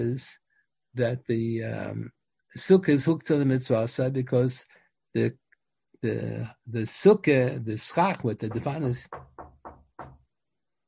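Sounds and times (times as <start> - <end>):
speech: 0.0 - 0.4, 1.0 - 5.4, 6.0 - 9.3
firm knocking on a door: 8.4 - 10.3.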